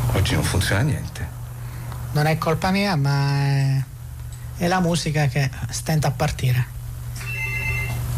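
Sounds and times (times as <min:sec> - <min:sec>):
speech: 0:00.2 - 0:01.4, 0:02.1 - 0:03.9, 0:04.6 - 0:07.3
telephone ringing in short electronic burst: 0:07.2 - 0:08.1.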